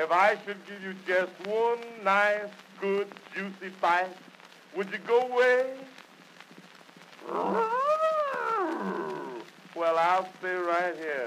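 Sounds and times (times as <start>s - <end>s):
speech: 0.0s - 6.0s, 7.2s - 7.7s, 9.8s - 11.2s
bear growling: 7.2s - 9.5s.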